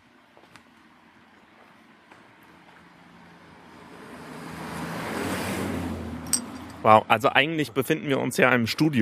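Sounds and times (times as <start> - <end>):
car approaching with rushing road noise: 1.0 - 7.1
speech: 6.8 - 9.0.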